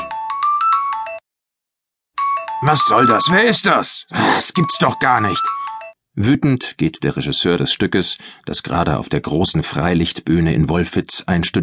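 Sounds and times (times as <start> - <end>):
mobile phone ringtone: 0.0 - 1.2, 2.2 - 6.0
speech: 2.6 - 5.6, 6.2 - 11.6.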